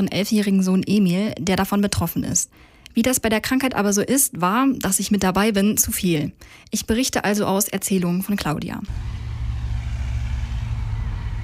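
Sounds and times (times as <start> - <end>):
speech: 0.0 - 9.3
low rumble of street traffic with cars passing at a distance: 8.9 - 11.4.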